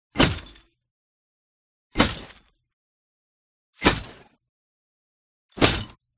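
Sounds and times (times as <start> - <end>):
chainmail armor impact: 0.2 - 0.7, 2.0 - 2.5, 3.8 - 4.4, 5.5 - 6.1.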